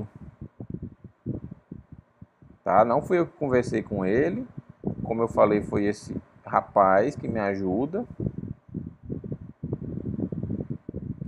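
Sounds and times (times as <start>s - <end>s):
electric fan blowing air: 0.0s - 11.2s
speech: 2.7s - 8.2s.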